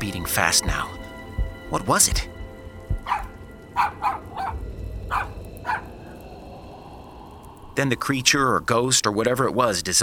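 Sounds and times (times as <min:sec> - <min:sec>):
speech: 0:00.2 - 0:01.0, 0:01.7 - 0:02.3, 0:07.8 - 0:10.0
dog barking: 0:03.0 - 0:05.9.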